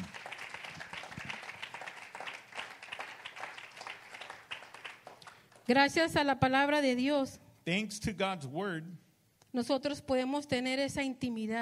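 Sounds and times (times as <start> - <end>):
church congregation applauding: 0.0 - 5.7
speech: 5.7 - 11.6.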